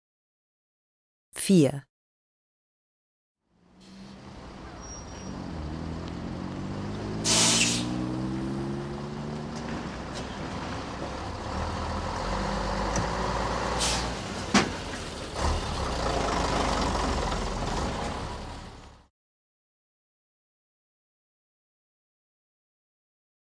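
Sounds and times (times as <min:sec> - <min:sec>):
speech: 0:01.4 - 0:01.9
bus engine rumbling: 0:03.6 - 0:19.0
hiss of air: 0:07.2 - 0:07.9.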